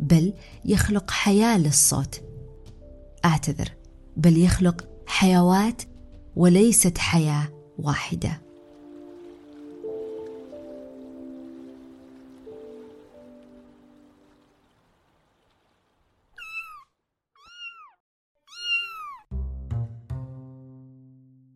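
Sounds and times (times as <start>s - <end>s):
speech: 0.1s - 2.3s, 3.2s - 8.4s
cat meowing: 16.4s - 19.3s.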